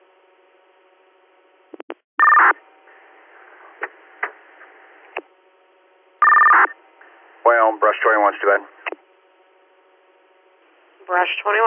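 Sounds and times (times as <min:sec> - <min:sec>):
faint radio static: 0:01.7 - 0:05.3, 0:06.4 - 0:09.5, 0:10.6 - 0:11.6
radio dispatch paging tones calling for manpower for an engine: 0:01.8 - 0:02.6, 0:06.2 - 0:06.7
speech: 0:07.4 - 0:08.8, 0:11.1 - 0:11.6.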